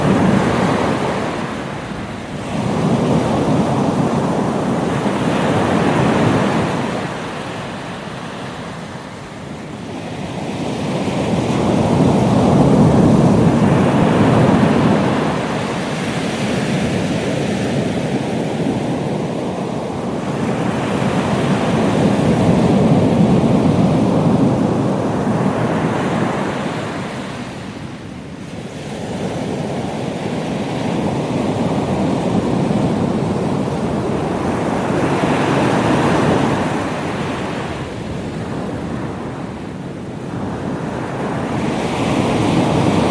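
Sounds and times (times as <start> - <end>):
beach surf: 0.0 - 43.0.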